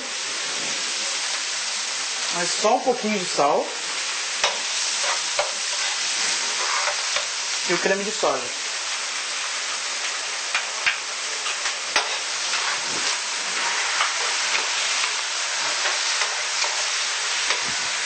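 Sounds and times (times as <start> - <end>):
food frying in a skillet: 0.0 - 18.0
speech: 2.3 - 3.8, 7.7 - 8.6.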